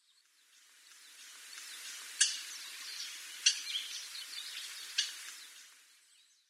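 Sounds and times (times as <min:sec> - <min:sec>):
Chinese grosbeak calling: 0:01.6 - 0:05.6.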